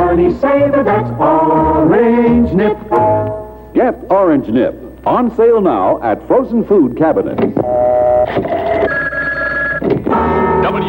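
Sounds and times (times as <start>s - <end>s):
speech: 0.2s - 3.1s, 3.8s - 9.0s
telephone ringing on outgoing call: 7.7s - 10.8s.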